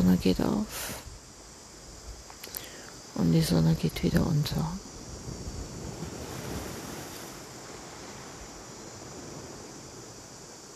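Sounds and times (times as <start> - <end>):
speech: 0.2 - 1.0, 3.2 - 4.9
wind buffeting the microphone: 3.8 - 10.7
ocean waves breaking on the beach: 4.8 - 10.7.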